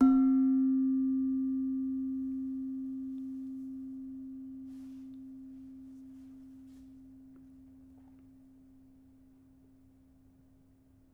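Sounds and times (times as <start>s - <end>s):
soft demung in a gamelan: 0.0s - 8.4s.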